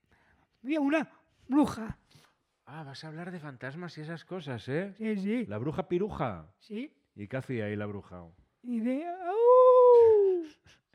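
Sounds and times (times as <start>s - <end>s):
speech: 0.6s - 2.0s, 2.7s - 9.6s
person imitating a wolf howl: 9.0s - 10.6s.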